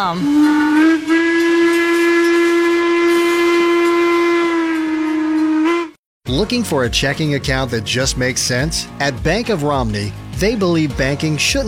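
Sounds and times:
speech: 0:00.0 - 0:01.2, 0:06.3 - 0:11.6
steam train whistle on an excursion train in the Appalachian Mountains: 0:00.0 - 0:06.0.

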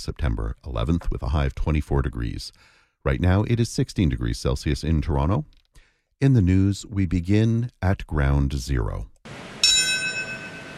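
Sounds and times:
speech: 0:00.0 - 0:05.6, 0:06.2 - 0:09.4
single bell tolling at memorial: 0:09.5 - 0:10.7.

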